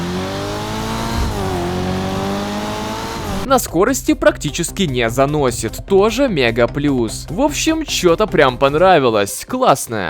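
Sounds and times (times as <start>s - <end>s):
1980s Nissan coupe engine revving loudly: 0.0s - 3.5s
speech: 3.5s - 10.0s.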